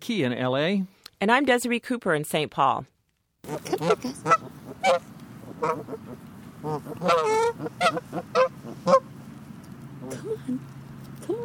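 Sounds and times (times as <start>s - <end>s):
speech: 0.0s - 9.1s, 10.0s - 11.4s
flock of geese honking: 3.4s - 9.4s.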